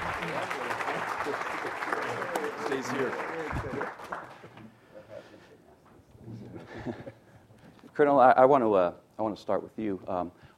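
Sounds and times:
audience clapping: 0.0 - 4.9
speech: 2.8 - 4.4, 8.0 - 10.4.

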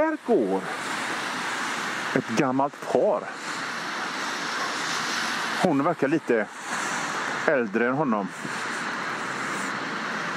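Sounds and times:
car and road noise: 0.0 - 10.3
speech: 0.1 - 0.9, 2.1 - 3.5, 5.6 - 6.6, 7.4 - 8.6.

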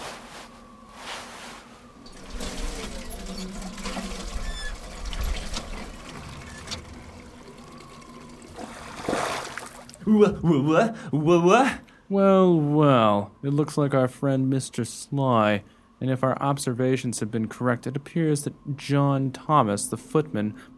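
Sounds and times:
hand water pump creaking through strokes: 2.0 - 10.0
speech: 10.1 - 20.7.

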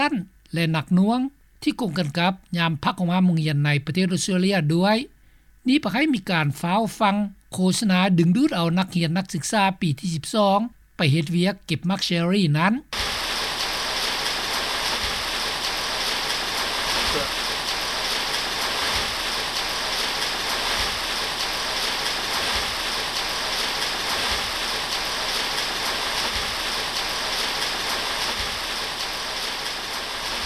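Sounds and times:
speech: 0.0 - 13.1
rain on a corrugated zinc roof: 12.9 - 30.4.

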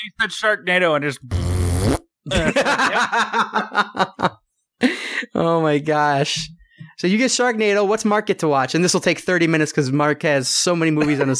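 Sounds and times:
speech: 0.0 - 11.3
short buzzy fart: 1.2 - 2.2
laughter: 2.3 - 5.2, 11.0 - 11.3.

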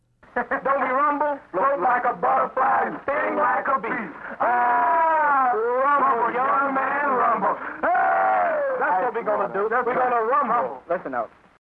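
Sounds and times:
laughter: 0.4 - 1.0, 3.9 - 9.0
speech: 0.4 - 7.6, 8.8 - 11.5
mourners weeping and wailing in a street in Thailand after the death of the king: 1.6 - 9.2.

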